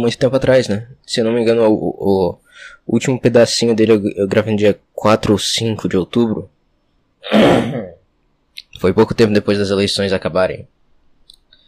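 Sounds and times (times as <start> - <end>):
speech: 0.0 - 6.5, 7.2 - 8.0, 8.8 - 10.8
raspy throat clearing: 7.2 - 8.0.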